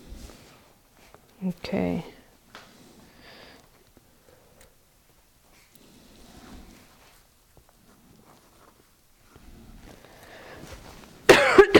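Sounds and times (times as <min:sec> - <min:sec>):
faint shuffling: 0:00.0 - 0:11.3
speech: 0:01.4 - 0:02.2
person coughing harshly: 0:11.3 - 0:11.7.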